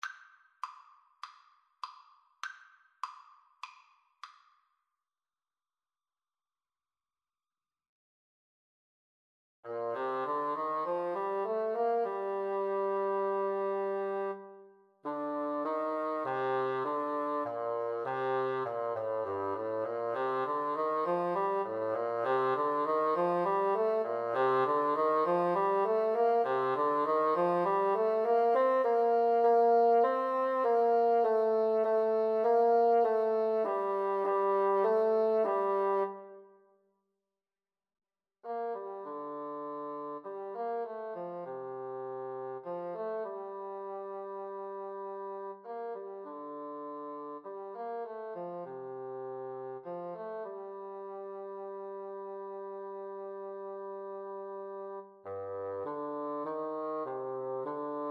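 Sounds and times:
bassoon duet: 9.7 - 36.5, 38.5 - 58.1.

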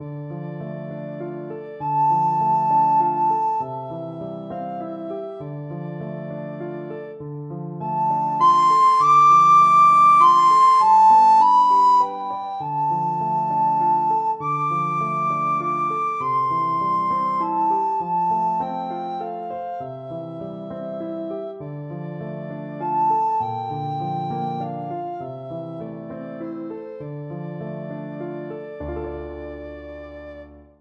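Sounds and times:
recorder playing a folk tune: 1.8 - 5.4, 7.8 - 20.4, 22.7 - 25.8.

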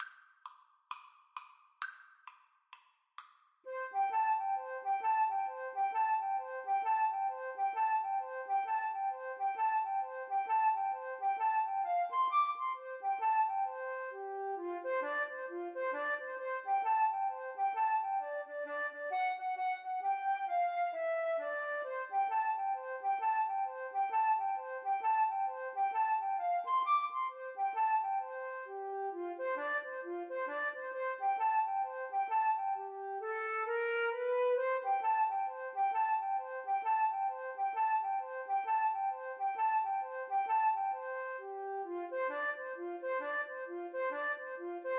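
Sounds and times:
boogie flute duet: 3.7 - 44.9.

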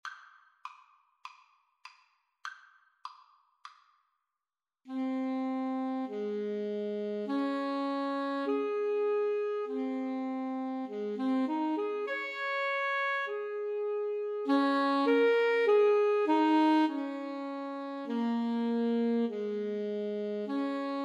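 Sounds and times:
clarinet and saxophone duet: 4.9 - 21.0.

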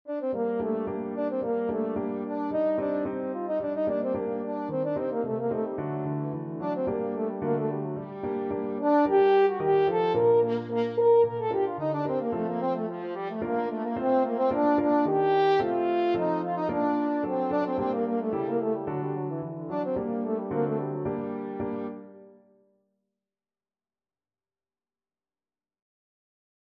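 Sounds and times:
french horn playing: 0.1 - 21.1.

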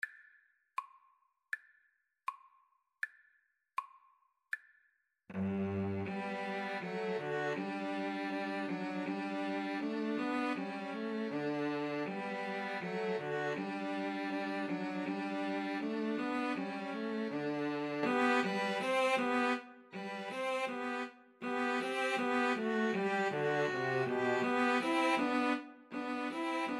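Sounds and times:
cello: 5.3 - 26.7
violins: 5.3 - 26.7.

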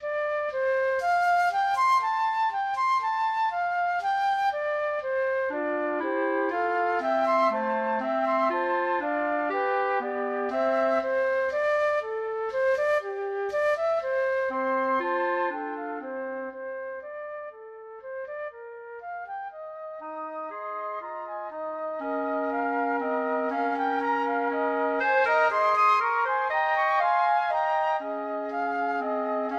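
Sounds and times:
clarinet: 0.0 - 29.5
two flutes: 0.0 - 29.5.

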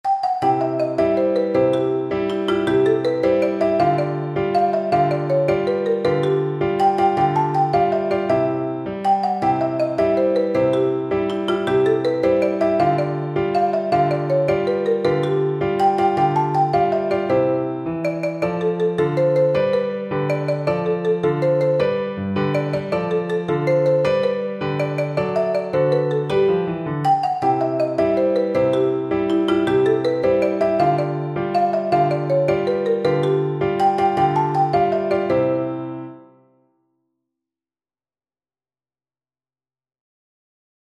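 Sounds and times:
percussion: 0.1 - 17.5, 18.1 - 35.6
marimba: 0.1 - 36.0.

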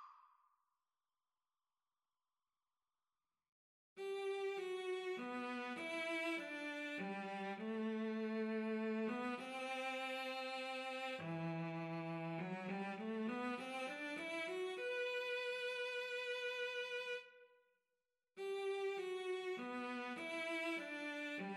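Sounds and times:
cello duet: 4.0 - 17.2, 18.4 - 21.5.

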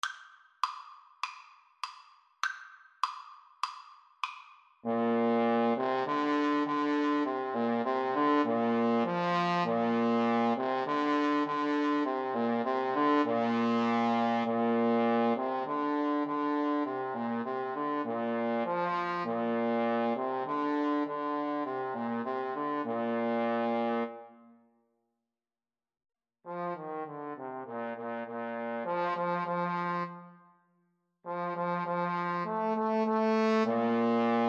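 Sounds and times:
trombone duet: 4.8 - 24.2, 26.5 - 30.2, 31.3 - 34.4.

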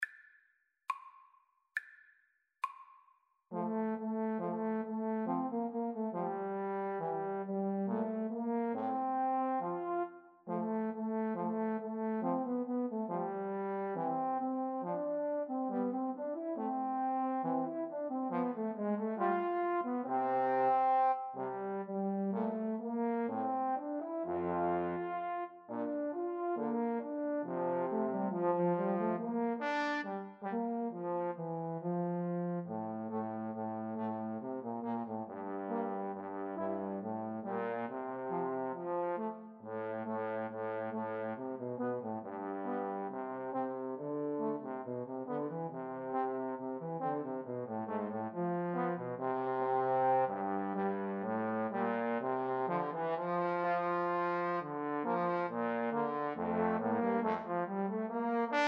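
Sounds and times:
trombone trio: 3.5 - 58.6.

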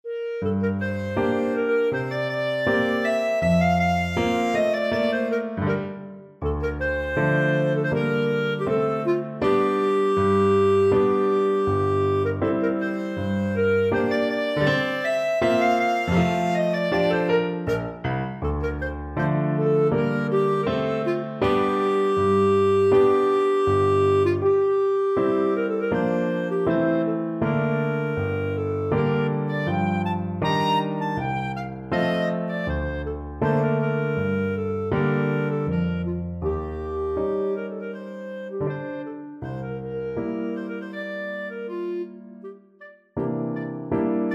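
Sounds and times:
clarinet playing a Romanian folk dance: 0.0 - 44.3.

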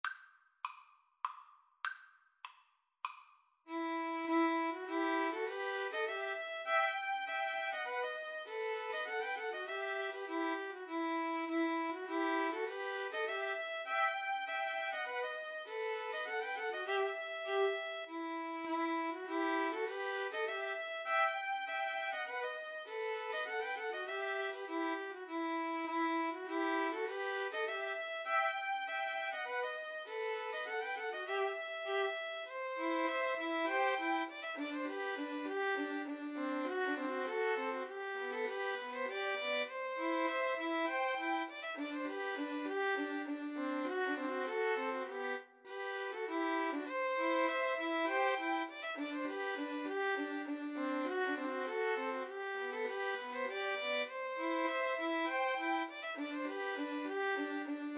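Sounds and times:
cello playing a polska: 3.7 - 57.9
two violins playing a polska: 3.7 - 57.9.

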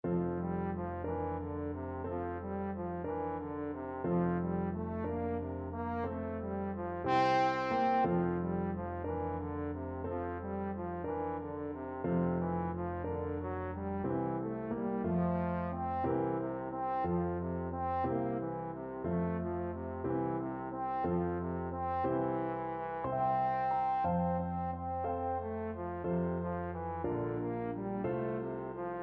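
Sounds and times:
trombone playing a slumber song: 0.1 - 29.0.

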